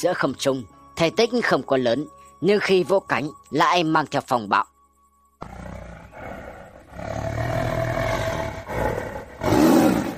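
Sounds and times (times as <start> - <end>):
speech: 0.0 - 4.7, 5.4 - 5.6
tiger roaring: 5.4 - 10.1.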